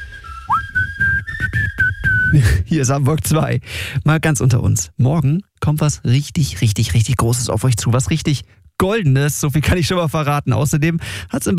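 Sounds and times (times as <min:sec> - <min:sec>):
person whistling a tune: 0:00.0 - 0:02.6
speech: 0:02.3 - 0:11.5.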